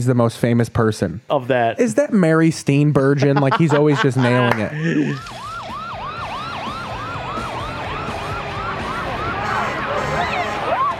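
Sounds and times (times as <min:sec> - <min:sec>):
speech: 0:00.0 - 0:05.4
laughter: 0:03.0 - 0:05.4
low traffic rumble: 0:03.6 - 0:10.9
fire truck siren passing: 0:05.0 - 0:10.9.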